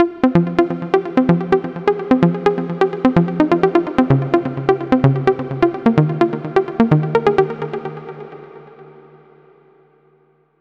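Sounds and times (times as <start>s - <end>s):
music loop in F minor: 0.0s - 8.4s.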